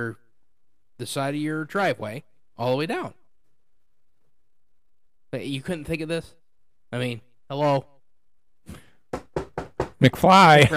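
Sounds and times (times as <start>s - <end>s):
speech: 0.0s - 0.2s, 1.0s - 3.2s, 5.3s - 7.9s, 10.0s - 10.7s
firm knocks: 9.1s - 10.0s.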